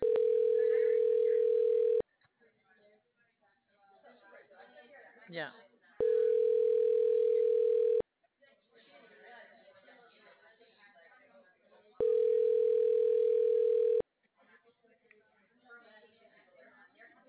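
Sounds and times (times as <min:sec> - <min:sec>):
telephone tone signalling an incoming call: 0:00.0 - 0:02.0, 0:06.0 - 0:08.0, 0:12.0 - 0:14.0
speech: 0:05.3 - 0:05.7.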